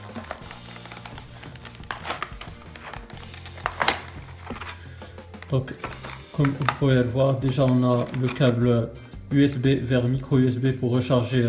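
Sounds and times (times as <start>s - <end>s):
cardboard box of Bluetooth in-ear earphones being opened: 0.0s - 4.8s
speech: 5.5s - 11.4s.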